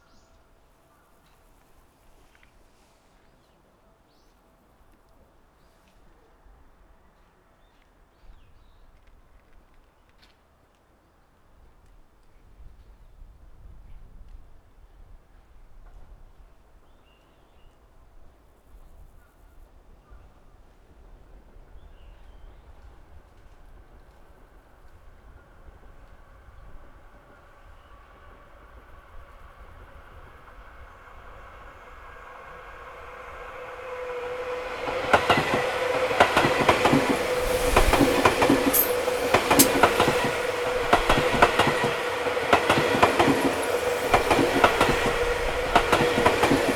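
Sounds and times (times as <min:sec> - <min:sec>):
up train passing: 0:25.5 - 0:46.7.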